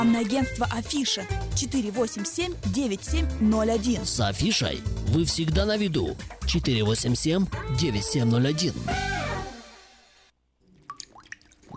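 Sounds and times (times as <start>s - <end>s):
speech: 0.0s - 9.3s
water dripping: 10.6s - 11.7s.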